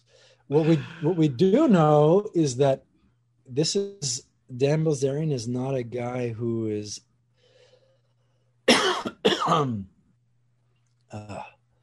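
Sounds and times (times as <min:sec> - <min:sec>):
faint low hum: 0:00.0 - 0:11.8
speech: 0:00.5 - 0:02.9, 0:03.5 - 0:07.1, 0:09.5 - 0:09.9, 0:11.1 - 0:11.6
person coughing and clearing throat: 0:08.7 - 0:09.8.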